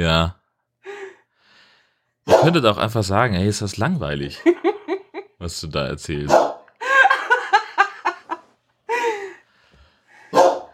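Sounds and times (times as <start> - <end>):
speech: 0.0 - 0.4, 2.4 - 6.5
dog barking: 2.3 - 2.6, 6.3 - 6.7, 10.3 - 10.7
laughter: 4.3 - 5.4, 6.8 - 9.4.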